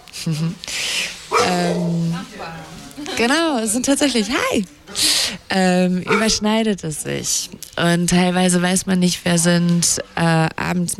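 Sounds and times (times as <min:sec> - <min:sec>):
speech: 0:00.2 - 0:00.8, 0:01.4 - 0:10.9
dogs barking and growling: 0:01.2 - 0:02.3, 0:05.9 - 0:06.7.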